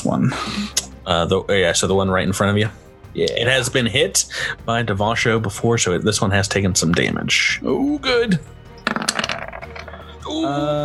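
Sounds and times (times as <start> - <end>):
speech: 0.2 - 9.1, 10.4 - 10.8
dice clattering across a hard tabletop: 8.8 - 10.0.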